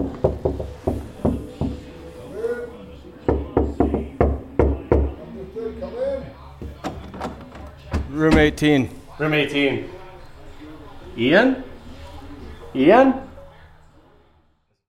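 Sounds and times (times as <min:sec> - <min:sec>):
sharp knocks on a room door: 0:00.0 - 0:01.8, 0:03.3 - 0:05.2
faint voices murmuring: 0:00.0 - 0:14.8
speech: 0:08.2 - 0:10.0, 0:11.2 - 0:11.7, 0:12.7 - 0:13.2.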